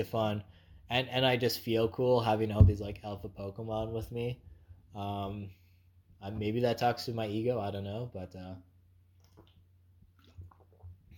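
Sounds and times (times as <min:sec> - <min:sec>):
speech: 0:00.0 - 0:05.6, 0:06.2 - 0:08.7
person sipping water: 0:09.1 - 0:11.1.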